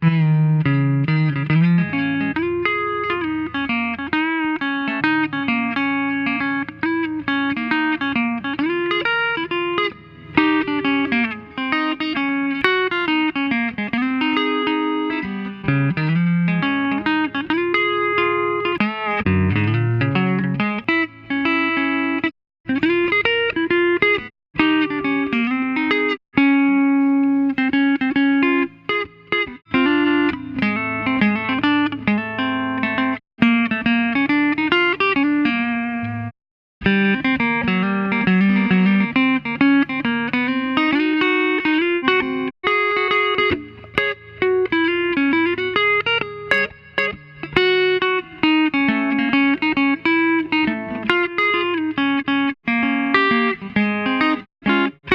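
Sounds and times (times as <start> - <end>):
solo guitar for delay: 0.0 - 55.1.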